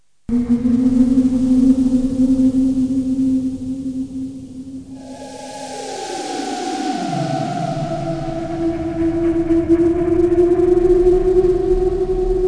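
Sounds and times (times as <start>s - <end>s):
eerie haunted castle sound effect: 0.3s - 12.4s.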